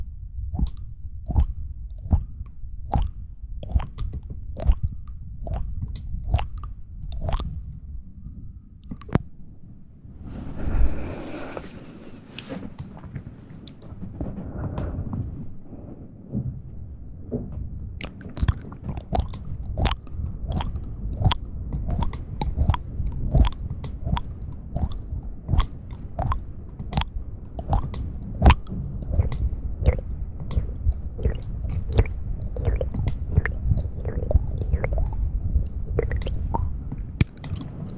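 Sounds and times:
wet mouth sounds: 0:00.6 - 0:07.7, 0:12.8 - 0:13.9, 0:18.0 - 0:37.9
soft rustling: 0:10.2 - 0:17.9.

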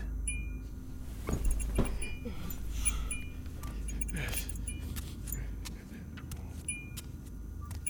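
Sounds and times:
low hum: 0:00.0 - 0:07.8
keys jangling as they are grabbed from a table: 0:01.4 - 0:02.2, 0:03.9 - 0:04.7.

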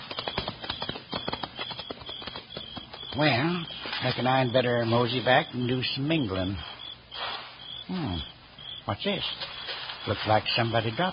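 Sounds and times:
horse hooves clip-clopping: 0:00.0 - 0:04.2
speech: 0:03.2 - 0:06.7, 0:07.9 - 0:11.1.

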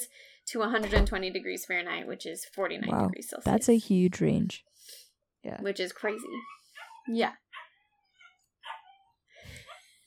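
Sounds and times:
speech: 0:00.0 - 0:07.4
male dog whimpering in thin high whines: 0:06.0 - 0:10.0.

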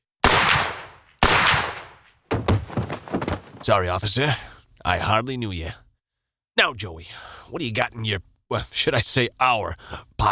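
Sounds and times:
pistol gunshots: 0:00.2 - 0:03.1
speech: 0:03.7 - 0:05.8, 0:06.6 - 0:10.3.

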